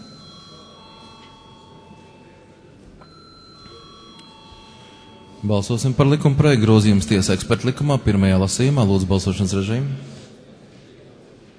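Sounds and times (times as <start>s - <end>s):
parliament chamber bell ringing before a vote: 0.0s - 7.4s
low murmur with faint indistinct voices: 0.0s - 11.5s
speech: 5.4s - 10.2s.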